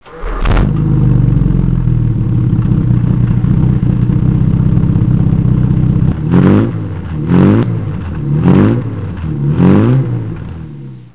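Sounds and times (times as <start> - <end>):
Jaguar 340 car engine throttle: 0.1 - 11.1.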